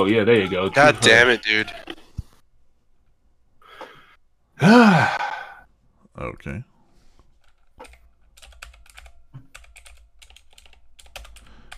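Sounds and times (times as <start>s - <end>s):
speech: 0.0s - 1.9s, 4.6s - 5.2s, 6.2s - 6.7s
typing on a mechanical keyboard: 7.4s - 11.7s.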